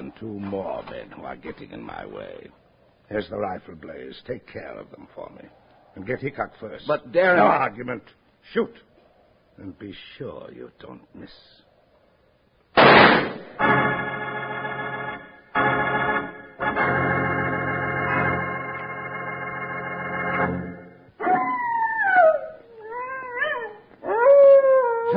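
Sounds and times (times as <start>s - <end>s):
speech: 0.2s - 8.9s, 9.6s - 11.6s
loud sustained droning chord: 13.6s - 21.0s
hungry prairie wolf howling: 21.2s - 25.1s.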